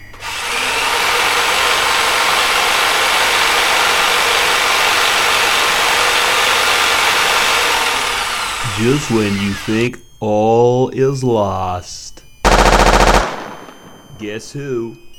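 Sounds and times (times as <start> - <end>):
battery-powered drill whirring: 0.0 - 10.0
speech: 8.8 - 12.2, 14.2 - 15.1.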